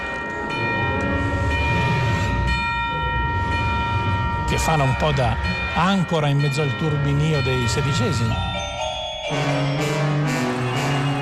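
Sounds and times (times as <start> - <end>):
orchestral bells ringing a repeating ostinato pattern: 0.0 - 11.1
speech: 4.6 - 8.5
dense busy orchestral texture: 9.2 - 11.1.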